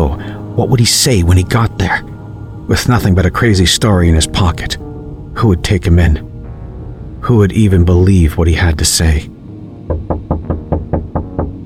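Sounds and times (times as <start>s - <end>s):
speech: 0.0s - 2.1s, 2.7s - 6.3s, 7.2s - 9.3s
knocking on a front door: 9.8s - 11.6s.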